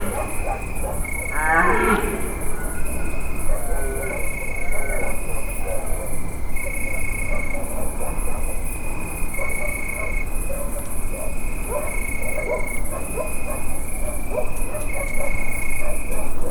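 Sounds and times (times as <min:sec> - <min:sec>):
red deer calling in nature: 0:00.0 - 0:05.3
crickets chirping in nature: 0:00.0 - 0:16.5
dog in nature: 0:00.0 - 0:16.5.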